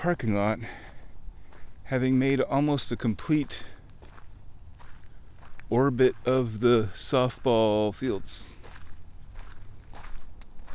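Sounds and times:
speech: 0.0 - 0.9, 1.9 - 3.8, 5.7 - 8.6
steady low noise: 0.0 - 10.7
footsteps walking across a parking lot: 3.0 - 10.7.

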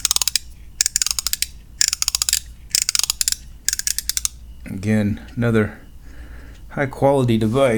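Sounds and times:
somewhat worn watch winder mechanism turning with rapid ratcheting clicks: 0.0 - 4.4
faint low hum: 0.0 - 7.7
speech: 4.7 - 5.8, 6.8 - 7.7.

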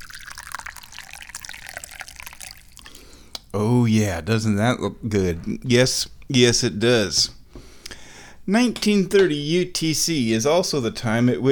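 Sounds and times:
tea pouring into a cup: 0.0 - 3.2
speech: 3.6 - 7.4, 8.5 - 11.4.

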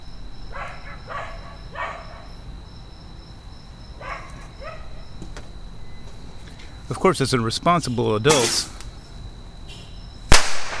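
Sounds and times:
faint high whine: 0.0 - 10.4
speech: 6.9 - 8.8
bottle rocket bang fired from a rocket tube outdoors at night: 8.3 - 8.8, 10.3 - 10.7
hissing crackling tail of a bottle rocket: 8.3 - 9.0, 10.3 - 10.7.

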